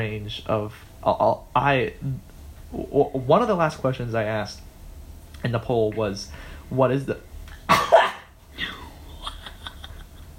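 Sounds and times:
speech: 0:00.0 - 0:04.7, 0:05.4 - 0:07.9
person coughing from a tickle in the throat: 0:07.7 - 0:09.0.

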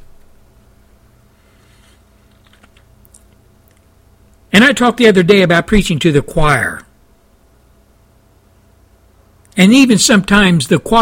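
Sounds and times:
typing on a computer keyboard: 0:02.3 - 0:03.8
speech: 0:04.6 - 0:06.9, 0:09.6 - 0:10.9.

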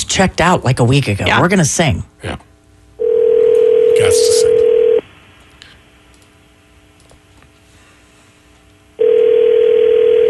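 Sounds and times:
speech: 0:00.2 - 0:02.4
telephone ringing on a radio call-in line: 0:03.0 - 0:05.0, 0:09.0 - 0:10.2.

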